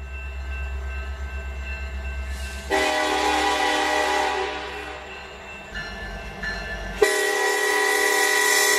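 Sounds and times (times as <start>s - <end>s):
rumbling rail noise: 0.0s - 8.7s
train horn blaring in sustained harmonic blasts: 2.7s - 5.1s, 7.0s - 8.7s.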